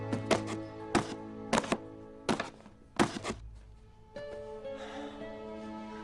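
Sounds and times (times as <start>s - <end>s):
pen jabbing holes through closed lid of small cardboard box: 0.1s - 3.4s.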